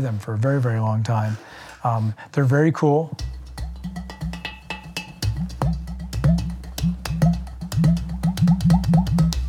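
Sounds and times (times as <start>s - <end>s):
speech: 0.0s - 3.3s
clay pot drum played in a busy rhythm: 3.1s - 9.4s.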